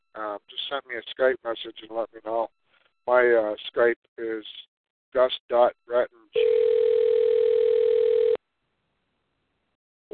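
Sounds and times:
speech: 0:00.2 - 0:06.8
electronic telephone ring tone: 0:06.4 - 0:08.4.

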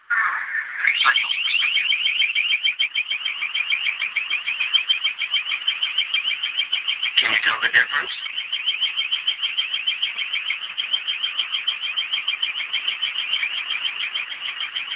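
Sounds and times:
long range acoustic device emitting shrill electronic chirping: 0:00.8 - 0:14.9
speech: 0:00.9 - 0:02.1, 0:07.4 - 0:08.4.

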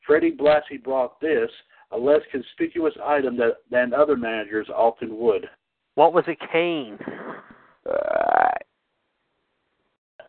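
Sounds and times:
speech: 0:00.1 - 0:08.3
loud voiced croaky belch: 0:07.9 - 0:08.6.

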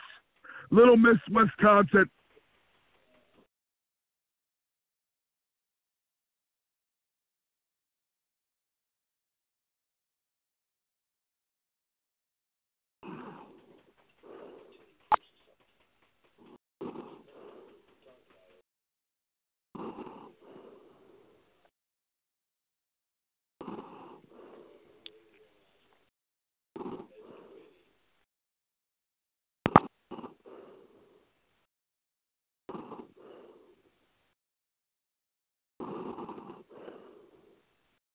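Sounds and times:
heavy raspy breathing over a phone line: 0:00.0 - 0:00.8, 0:13.0 - 0:15.1, 0:16.3 - 0:18.6, 0:19.8 - 0:21.7, 0:23.6 - 0:25.3, 0:26.8 - 0:27.9, 0:30.1 - 0:31.4, 0:32.8 - 0:34.0, 0:35.8 - 0:37.8
speech: 0:00.7 - 0:02.2.

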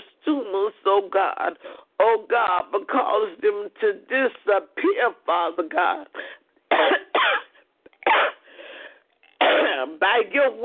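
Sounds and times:
speech: 0:01.0 - 0:07.4, 0:09.8 - 0:10.6
woman coughing while being prayed over for healing: 0:06.7 - 0:08.4, 0:09.4 - 0:10.0
wheezy trailing breath: 0:08.4 - 0:09.1.

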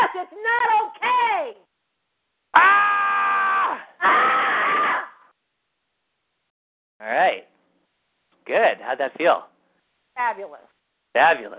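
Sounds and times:
speech: 0:00.2 - 0:01.7, 0:08.9 - 0:09.5, 0:10.2 - 0:11.5
group of people yelling and screaming: 0:02.6 - 0:05.2.

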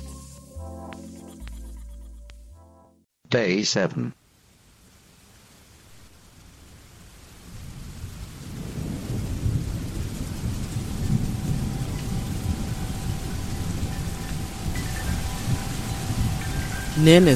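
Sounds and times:
speech: 0:03.3 - 0:04.2, 0:17.0 - 0:17.3
steady rain pouring with a deep rumbling roar: 0:05.7 - 0:17.3.

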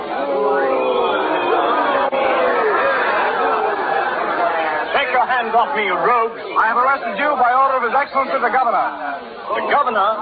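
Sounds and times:
dense crowd roaring and shouting in the street: 0:00.0 - 0:07.3
speech: 0:05.5 - 0:10.2.

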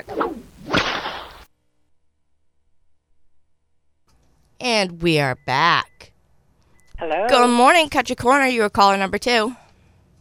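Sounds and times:
whip crack: 0:00.1 - 0:01.4
speech: 0:04.8 - 0:06.0, 0:07.0 - 0:09.6.

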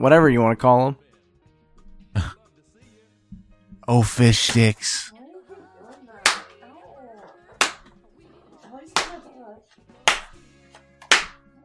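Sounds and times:
speech: 0:00.0 - 0:01.0, 0:03.9 - 0:05.1
people talking quietly: 0:03.8 - 0:10.0
hand slaps on bare skin: 0:06.2 - 0:06.6, 0:07.6 - 0:08.0, 0:09.0 - 0:09.3, 0:10.0 - 0:11.5.

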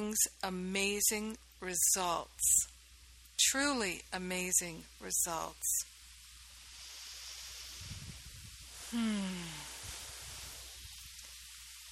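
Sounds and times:
speech: 0:00.0 - 0:02.7, 0:03.4 - 0:05.9, 0:08.9 - 0:09.5
tropical rain pouring outside an open window: 0:06.4 - 0:11.9.

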